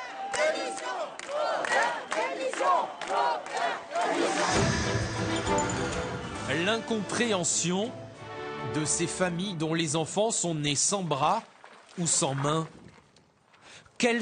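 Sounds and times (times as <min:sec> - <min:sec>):
crowd of protesters shouting in a dense noisy roar: 0:00.0 - 0:04.6
large crowd of protesters chanting on a memorial march in Marseille: 0:00.0 - 0:05.7
speech: 0:00.5 - 0:12.8, 0:14.0 - 0:14.2.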